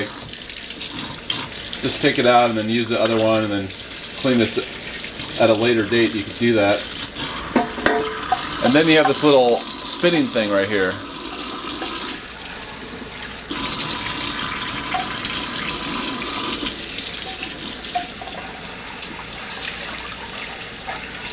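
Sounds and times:
water running from a tap rinsing a part in a sink: 0.0s - 21.3s
speech: 1.8s - 4.8s, 5.4s - 7.0s, 8.6s - 11.1s.

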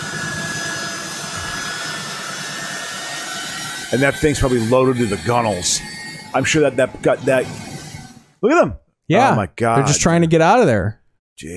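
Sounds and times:
large airplane jet engine roaring on a runway: 0.0s - 8.4s
speech: 3.9s - 7.7s, 8.4s - 11.5s.

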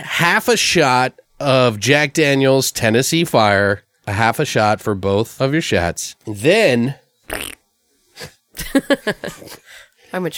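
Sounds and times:
speech: 0.2s - 7.6s, 8.2s - 10.3s
raspy fart: 7.3s - 8.3s.

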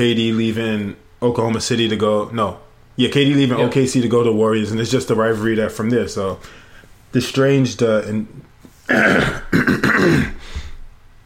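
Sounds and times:
speech: 0.0s - 10.4s
person clearing throat hard to bring up phlegm: 8.9s - 10.4s.

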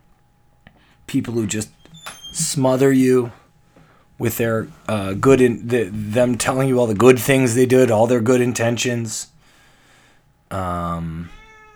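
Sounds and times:
speech: 1.1s - 3.4s, 4.2s - 9.4s, 10.5s - 11.4s
cat's loud drawn-out meow: 11.0s - 11.7s.

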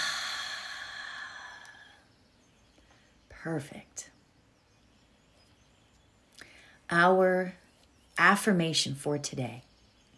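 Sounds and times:
long deep breath released slowly during a relaxation exercise: 0.0s - 2.0s
speech: 3.4s - 4.1s, 6.9s - 7.6s, 8.2s - 9.7s.

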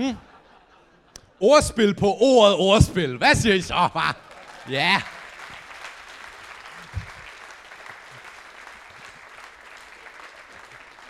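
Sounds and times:
speech: 0.0s - 0.3s, 1.4s - 5.1s
audience applause: 3.9s - 11.0s.

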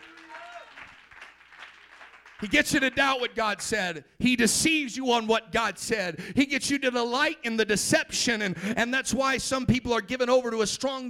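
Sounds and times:
audience clapping hands: 0.0s - 3.7s
speech: 2.4s - 11.0s.

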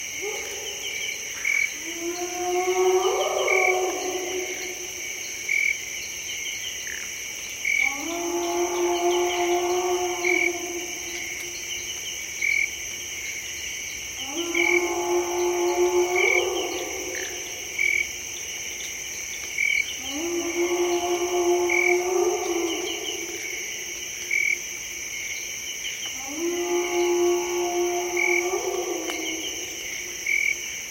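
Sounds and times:
high insect chorus humming: 0.0s - 30.8s
lone hyena whooping in a dark forest: 1.8s - 5.0s, 7.8s - 11.6s, 14.2s - 17.8s, 20.0s - 23.6s, 26.2s - 30.2s.

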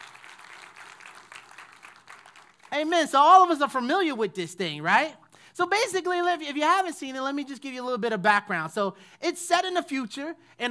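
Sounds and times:
audience applause: 0.0s - 2.8s
speech: 2.7s - 10.6s.

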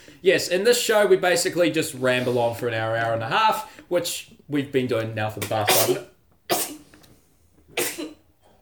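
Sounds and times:
speech: 0.2s - 6.1s
sharp breathy sneezes: 5.6s - 6.9s, 7.8s - 8.3s.

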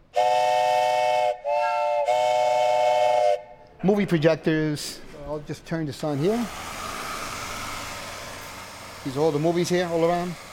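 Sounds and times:
old train whistle blasts: 0.0s - 3.8s
speech: 3.8s - 6.8s, 9.0s - 10.4s.

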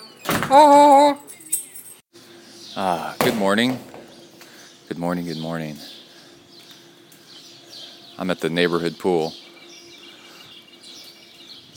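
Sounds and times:
front door creaking open: 0.0s - 1.0s
speech: 0.5s - 1.2s, 2.8s - 3.9s, 4.9s - 6.0s, 8.2s - 9.4s
keys and latch rattling: 1.0s - 2.0s.

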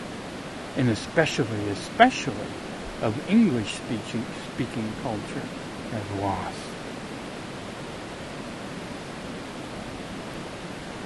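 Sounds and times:
rushing water of a mountain river: 0.0s - 11.0s
speech: 0.8s - 6.7s.

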